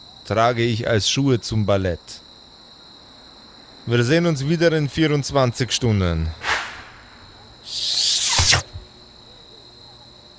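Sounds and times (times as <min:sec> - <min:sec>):
speech: 0:00.3 - 0:02.2, 0:03.9 - 0:06.4
airy hiss: 0:06.4 - 0:08.8
high-pitched whistling rush: 0:06.4 - 0:08.8.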